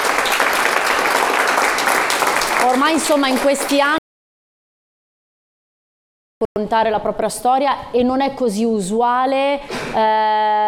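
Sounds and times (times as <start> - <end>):
applause for teachers: 0.0 - 4.0
speech: 2.7 - 4.0, 6.5 - 10.6.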